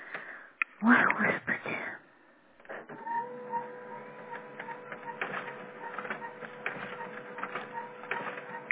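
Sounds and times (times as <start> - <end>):
speech: 0.8 - 1.5
printer mechanism whirring and clicking after paper loaded: 2.8 - 8.6.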